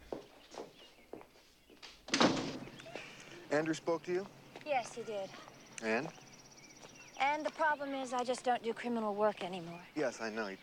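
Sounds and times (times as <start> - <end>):
French door rattling swish: 2.1 - 2.8
French door opening: 2.1 - 3.3
speech: 3.5 - 6.2, 7.2 - 10.6.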